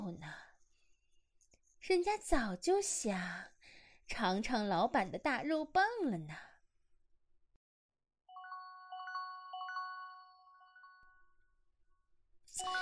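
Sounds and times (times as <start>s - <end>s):
speech: 0.2s - 0.5s, 1.8s - 3.5s, 4.1s - 6.5s, 12.5s - 12.8s
electronic phone ringtone melody: 8.3s - 11.2s, 12.6s - 12.8s.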